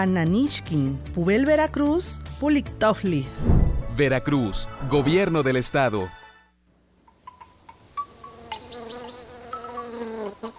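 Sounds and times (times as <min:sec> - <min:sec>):
speech: 0:00.0 - 0:06.2
bee buzzing: 0:08.0 - 0:10.5.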